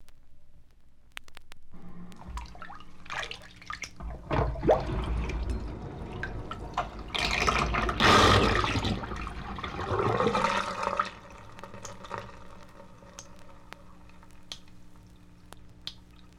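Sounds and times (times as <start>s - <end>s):
sink draining: 2.2s - 14.6s.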